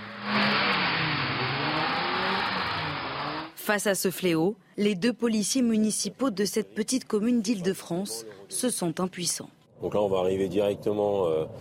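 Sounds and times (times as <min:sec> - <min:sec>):
dozens of car engines revving hard in street rodeos: 0:00.0 - 0:03.6
rushing tire and road noise from drifting cars: 0:00.0 - 0:03.6
speech: 0:03.7 - 0:11.5.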